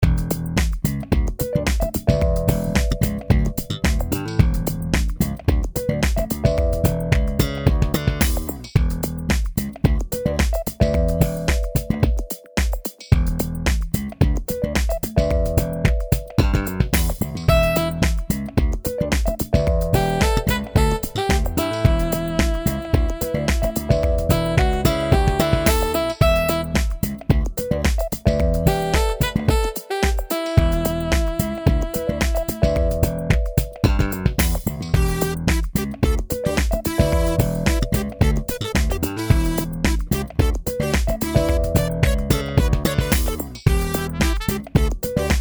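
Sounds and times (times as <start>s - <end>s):
funk chase music: 0.0s - 45.4s.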